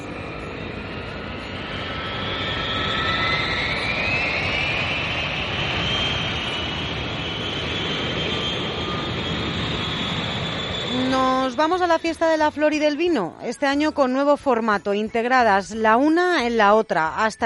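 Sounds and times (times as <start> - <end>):
airplane taking off: 0.0 - 13.4
speech: 11.6 - 17.4.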